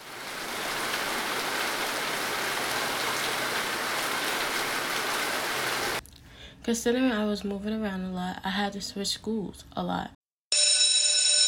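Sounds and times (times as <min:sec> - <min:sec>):
pouring rain: 0:00.0 - 0:06.0
speech: 0:06.6 - 0:10.2.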